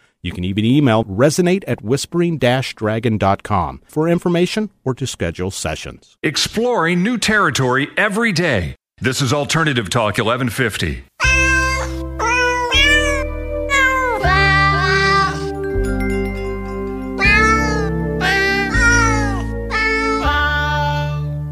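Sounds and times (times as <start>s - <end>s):
speech: 0.2s - 11.5s
cat meows arranged into a Christmas melody: 11.2s - 15.5s, 17.2s - 21.3s
steady musical backing: 11.2s - 21.5s.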